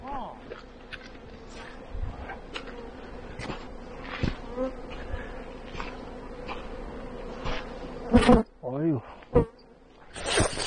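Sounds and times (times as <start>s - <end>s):
voice: 0.0s - 0.4s
honeybees buzzing: 0.0s - 10.6s.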